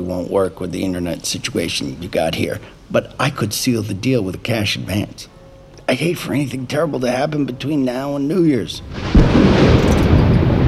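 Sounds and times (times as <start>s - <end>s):
speech: 0.1s - 5.3s, 5.9s - 10.0s
thunder rumbling during a snowstorm: 8.7s - 10.6s.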